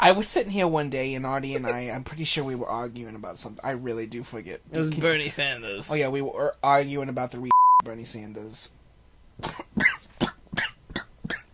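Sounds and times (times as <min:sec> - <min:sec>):
speech: 0:00.0 - 0:08.8, 0:09.4 - 0:10.0
harsh raspy dry coughs: 0:09.4 - 0:11.5.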